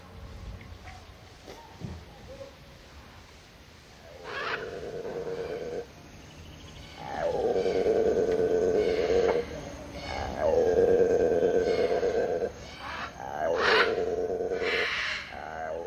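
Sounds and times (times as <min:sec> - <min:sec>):
howler monkey roaring: 0:04.0 - 0:05.9, 0:07.0 - 0:15.8.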